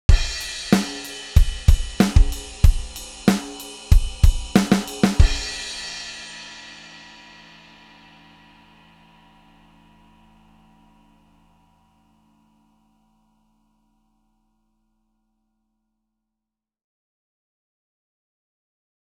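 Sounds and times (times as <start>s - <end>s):
music loop: 0.1s - 6.2s.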